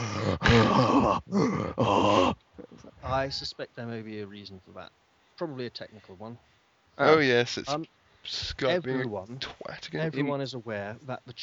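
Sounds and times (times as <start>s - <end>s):
loud heavy breathing with groaning edge into microphone: 0.0s - 3.0s
speech: 0.3s - 2.4s, 3.1s - 11.4s.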